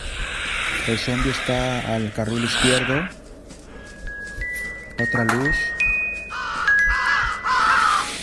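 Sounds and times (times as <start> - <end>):
crow cawing in a zombie video game: 0.2 - 3.1, 6.3 - 8.2
speech: 0.9 - 3.2, 5.0 - 5.7.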